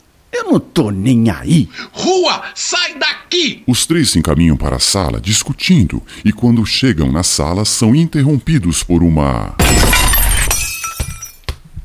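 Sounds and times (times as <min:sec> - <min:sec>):
speech: 0:00.5 - 0:10.1
glass shards tinkling and clinking as they fall: 0:09.6 - 0:11.4
window pane shattering from a ball: 0:09.6 - 0:11.4.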